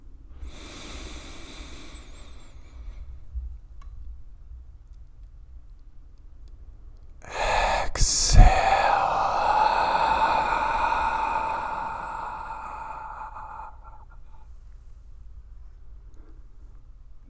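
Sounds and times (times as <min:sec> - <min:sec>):
slow deep inhale: 0:00.3 - 0:03.2, 0:07.3 - 0:14.6
shorter louder rush of breath: 0:00.4 - 0:03.2, 0:07.3 - 0:14.6.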